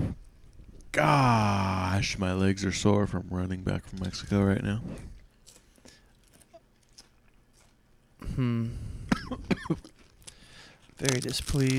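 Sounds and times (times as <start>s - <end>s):
speech: 1.0s - 5.2s, 8.4s - 10.0s, 11.0s - 11.7s
rough throaty cough with hacking bursts: 8.2s - 10.0s.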